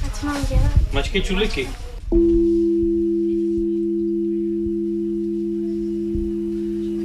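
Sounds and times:
speech: 0:00.2 - 0:02.4
synthesized molecule tone chord from a molecular piano key: 0:02.1 - 0:07.0.

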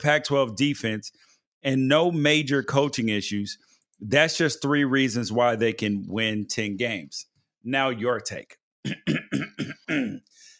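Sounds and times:
speech: 0:00.0 - 0:10.5
person clearing throat: 0:08.9 - 0:10.3.

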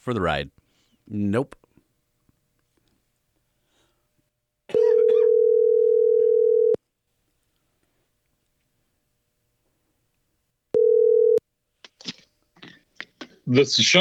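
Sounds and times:
speech: 0:00.0 - 0:01.6, 0:13.5 - 0:14.0
phone line ringback tone during outgoing call: 0:04.8 - 0:06.8, 0:10.8 - 0:11.4.

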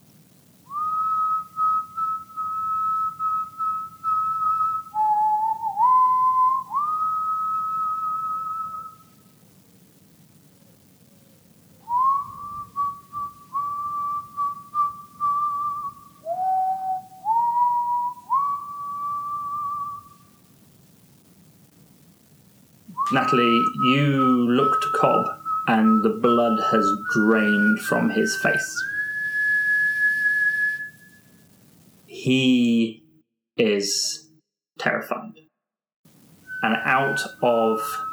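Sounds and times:
faint hiss: 0:00.0 - 0:33.0, 0:33.6 - 0:34.2, 0:36.1 - 0:38.1
person whistling a slow sliding melody: 0:00.7 - 0:09.1, 0:11.9 - 0:20.2, 0:22.9 - 0:31.3, 0:36.5 - 0:38.1
speech: 0:23.1 - 0:28.9, 0:32.2 - 0:32.7, 0:33.8 - 0:34.2, 0:37.2 - 0:38.1.

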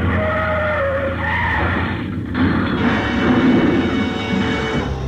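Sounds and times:
tires screeching in a long loud skid: 0:00.0 - 0:04.9.

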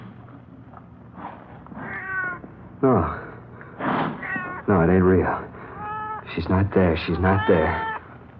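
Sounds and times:
cat meowing: 0:01.8 - 0:02.4, 0:04.2 - 0:04.7, 0:05.7 - 0:06.3, 0:07.0 - 0:08.0
speech: 0:02.8 - 0:03.2, 0:04.7 - 0:05.5, 0:06.3 - 0:07.9.

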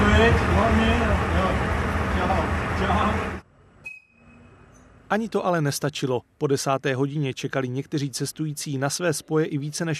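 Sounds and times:
train departing from station rumbling: 0:00.0 - 0:03.4
speech: 0:00.2 - 0:03.3, 0:05.1 - 0:09.9.

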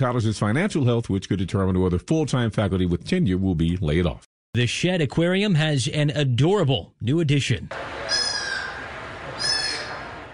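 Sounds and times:
speech: 0:00.0 - 0:08.2
sea otter pup squealing: 0:08.1 - 0:08.8, 0:09.4 - 0:10.0.

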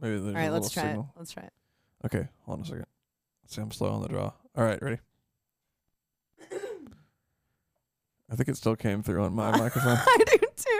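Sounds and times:
speech: 0:00.0 - 0:05.1, 0:08.3 - 0:10.7
person clearing throat into a microphone: 0:06.4 - 0:07.0.

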